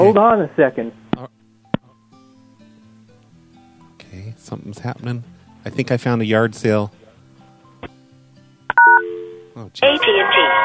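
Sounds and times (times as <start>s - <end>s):
speech: 0.0s - 1.0s, 4.4s - 7.0s, 9.6s - 10.6s
telephone keypad dialing tones: 8.7s - 9.3s.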